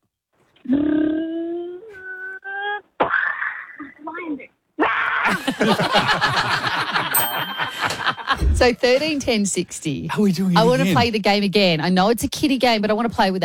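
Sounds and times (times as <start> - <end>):
speech: 0.7 - 1.1, 5.5 - 7.1, 8.4 - 13.4
child imitating a lion with growling tones: 0.7 - 2.8
laughter: 5.2 - 8.4.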